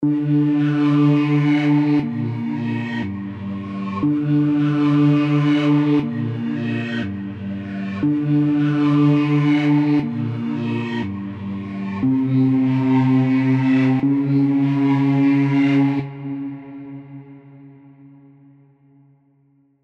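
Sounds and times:
bass pad with macro modulation: 0.0s - 18.8s.

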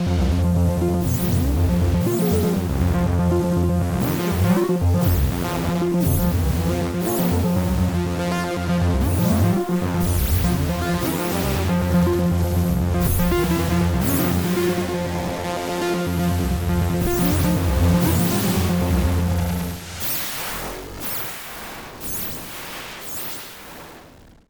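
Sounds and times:
synth delay with delay time and feedback modulation: 0.0s - 20.4s.

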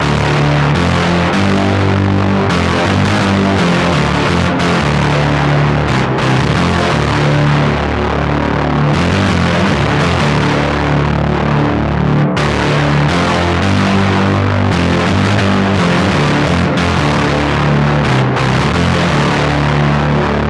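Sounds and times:
analog synth: 0.0s - 20.4s.

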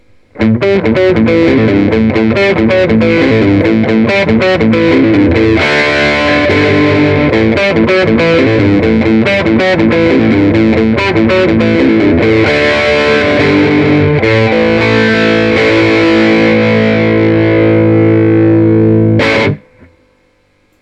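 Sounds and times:
FW15R amplifier overdrive: 0.0s - 20.8s.

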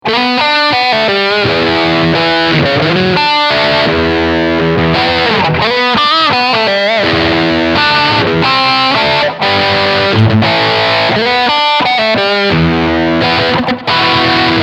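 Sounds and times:
overdriven guitar: 0.0s - 14.6s.

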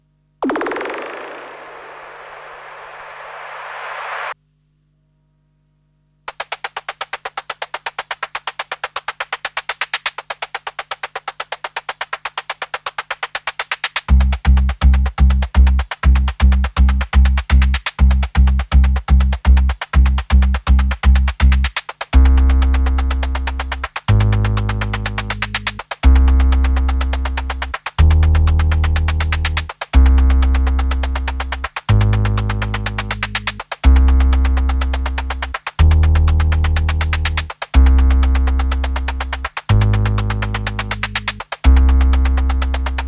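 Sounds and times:
noise percussion: 0.4s - 4.4s, 6.3s - 43.0s
sub bass: 14.1s - 43.0s.

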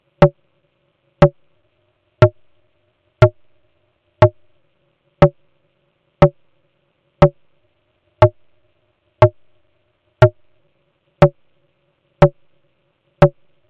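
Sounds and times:
snare drum through a ring modulator effect pedal: 0.2s - 0.4s, 1.2s - 1.5s, 2.2s - 2.6s, 3.2s - 3.6s, 4.2s - 4.6s, 5.2s - 5.5s, 6.2s - 6.5s, 7.2s - 7.5s, 8.2s - 8.6s, 9.2s - 9.6s, 10.2s - 10.6s, 11.2s - 11.6s, 12.2s - 12.6s, 13.2s - 13.6s.

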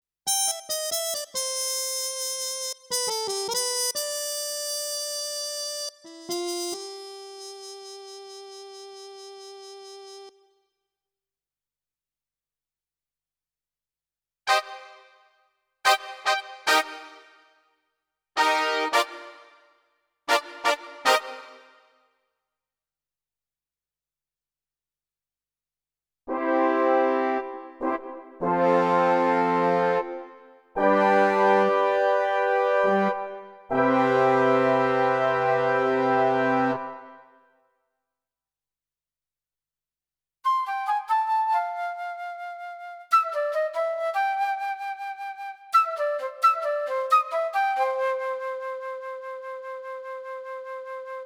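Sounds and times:
brass instruments: 0.3s - 10.4s, 14.5s - 17.6s, 18.4s - 19.7s, 20.3s - 22.0s, 26.3s - 37.4s
woodwind instruments: 0.3s - 10.5s, 15.9s - 17.5s, 18.4s - 19.7s, 20.3s - 22.0s, 26.3s - 37.4s, 40.4s - 51.2s.

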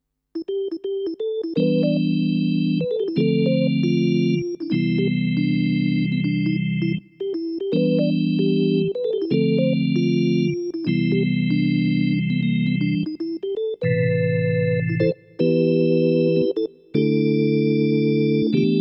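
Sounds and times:
organ: 0.4s - 18.7s.

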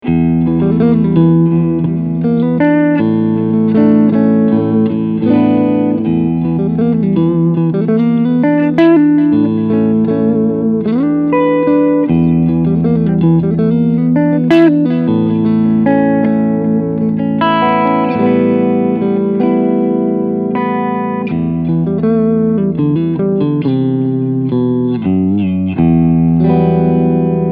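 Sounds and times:
clean electric guitar on front and middle pickups: 0.0s - 27.4s.

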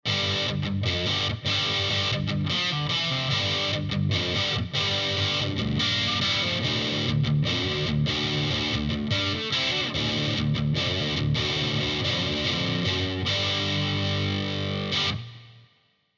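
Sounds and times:
Vox NT15 high-gain amplifier: 0.0s - 15.8s.

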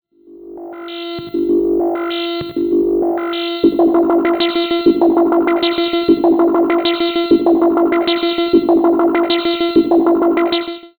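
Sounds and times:
synthesizer sequence through delay effect with external LFO in fold: 0.2s - 10.9s.

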